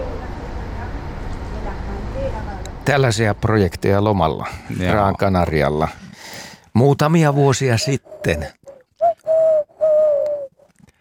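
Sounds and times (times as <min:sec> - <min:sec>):
faint noise: 0:00.0 - 0:10.9
speech: 0:02.9 - 0:06.0, 0:06.8 - 0:08.6
Eurasian collared dove cooing: 0:07.6 - 0:10.7.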